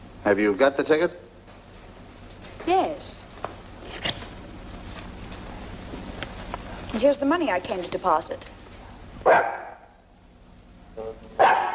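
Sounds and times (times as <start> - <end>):
speech: 0.2 - 1.2, 2.6 - 3.2, 6.9 - 8.5, 9.2 - 9.6
dog barking: 9.2 - 10.0, 11.4 - 11.7
dog yelping: 9.3 - 9.8, 11.4 - 11.7.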